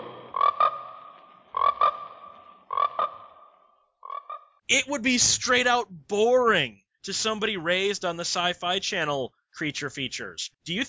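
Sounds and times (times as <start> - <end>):
frogs croaking: 0.0 - 4.6
speech: 4.7 - 10.8.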